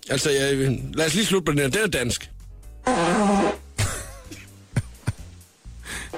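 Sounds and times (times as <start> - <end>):
speech: 0.1 - 3.6
loud buzzy fart: 2.8 - 3.7.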